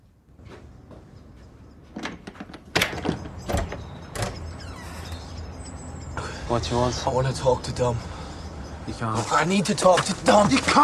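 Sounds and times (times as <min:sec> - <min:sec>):
front door creaking and scraping: 0:01.9 - 0:05.7
speech: 0:06.5 - 0:08.2, 0:08.8 - 0:10.8.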